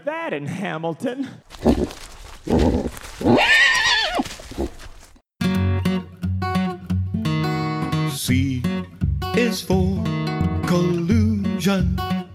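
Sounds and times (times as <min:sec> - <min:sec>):
speech: 0:00.1 - 0:03.6
hooves clopping: 0:01.4 - 0:05.2
rustling: 0:01.4 - 0:05.2
horse whinnying: 0:01.5 - 0:05.1
music: 0:05.4 - 0:12.3.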